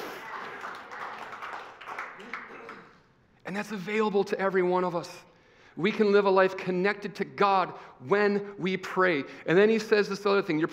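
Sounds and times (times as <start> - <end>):
audience clapping: 0.0 - 3.1
speech: 3.5 - 10.7.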